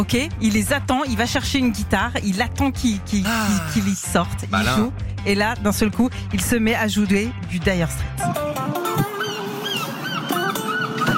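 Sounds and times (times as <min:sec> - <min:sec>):
speech: 0:00.0 - 0:08.8
seagulls calling: 0:09.0 - 0:11.1.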